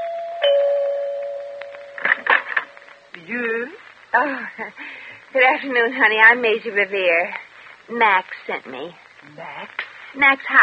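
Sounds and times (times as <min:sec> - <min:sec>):
doorbell chiming: 0:00.0 - 0:02.0
speech: 0:03.2 - 0:10.6.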